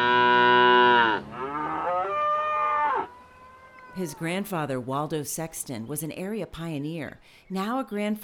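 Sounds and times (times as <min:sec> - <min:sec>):
herd of cattle mooing in a ranch cow pasture: 0:00.0 - 0:04.3
long sustained cow bellow: 0:00.0 - 0:04.3
speech: 0:04.0 - 0:08.2.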